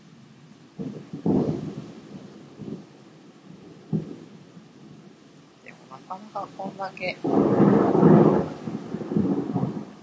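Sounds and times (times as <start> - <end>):
faint hiss of rain: 0.0 - 10.0
thunder rumbling: 0.0 - 10.0
speech: 6.1 - 8.2.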